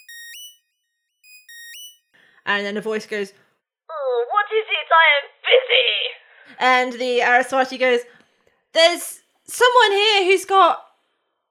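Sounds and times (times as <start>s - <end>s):
electronic communicator beep: 0.0s - 0.6s, 1.2s - 2.0s
speech: 2.5s - 3.5s, 5.0s - 10.8s.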